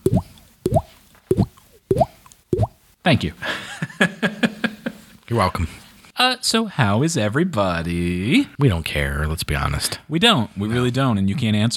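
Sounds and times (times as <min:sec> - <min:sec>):
hollow watery plops: 0:00.0 - 0:02.8
speech: 0:03.1 - 0:04.4, 0:05.3 - 0:11.7
laughter: 0:03.4 - 0:05.1.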